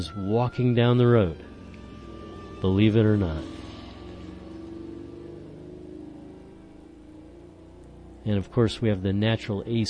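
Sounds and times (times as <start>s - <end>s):
speech: 0.0s - 1.5s, 2.6s - 3.6s, 8.2s - 9.8s
passing car engine humming: 0.0s - 9.8s.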